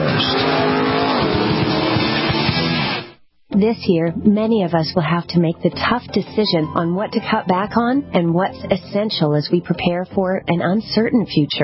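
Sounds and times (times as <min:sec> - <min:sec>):
sports racing cars speeding past at a sports car race: 0:00.0 - 0:03.1
speech: 0:03.6 - 0:11.6.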